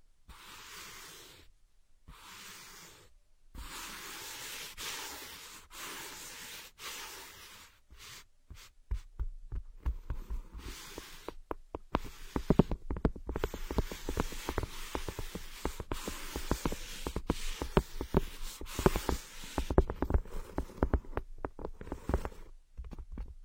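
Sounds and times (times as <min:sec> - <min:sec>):
ear scratching with rubbing and scraping: 0:00.3 - 0:01.5, 0:02.1 - 0:08.7, 0:10.1 - 0:22.5
crisp clicks and taps: 0:08.9 - 0:18.2, 0:18.8 - 0:23.4.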